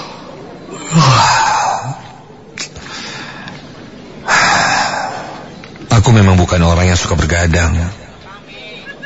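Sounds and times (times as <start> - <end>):
person yawning from sleepiness: 0.7 - 2.0
speech: 6.2 - 8.0.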